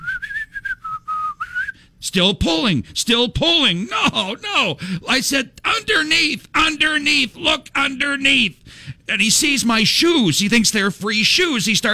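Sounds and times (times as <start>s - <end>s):
person whistling a short wavering tune: 0.0s - 1.9s
breaths: 1.5s - 2.0s, 4.8s - 5.1s, 8.6s - 9.1s
speech: 2.0s - 11.9s.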